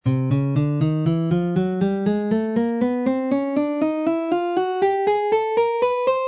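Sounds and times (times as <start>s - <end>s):
guitar playing C chromatic scale in alternate pattern: 0.0s - 6.2s.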